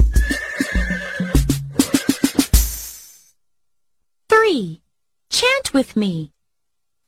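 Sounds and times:
horse neighing: 0:00.1 - 0:02.6
speech: 0:05.8 - 0:06.4.

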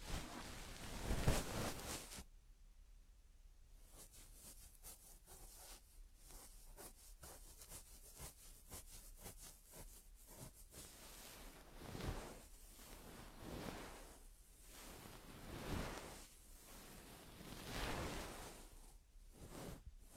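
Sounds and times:
loud rough rustle: 0:00.0 - 0:02.2, 0:11.2 - 0:18.8
feather stick brushing and cleaning an ear: 0:04.1 - 0:20.1.

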